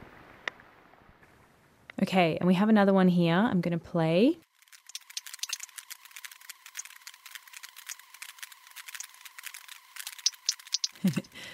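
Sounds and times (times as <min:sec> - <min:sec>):
speech: 0:02.0 - 0:04.4
sperm whales echolocating clicks: 0:04.6 - 0:11.5.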